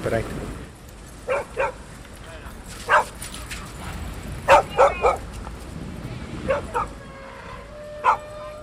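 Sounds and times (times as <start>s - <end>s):
speech: 0.0s - 0.6s
steady murmur of outdoor noise: 0.0s - 8.6s
dogs barking: 1.2s - 1.9s, 2.9s - 3.2s, 4.4s - 5.3s, 6.4s - 7.0s, 8.0s - 8.6s.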